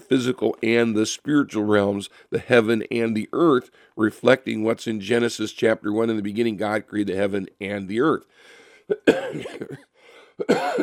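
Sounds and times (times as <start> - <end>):
speech: 0.1 - 10.8
harsh hacking coughs from a person with a lingering cough after an illness: 8.9 - 10.8.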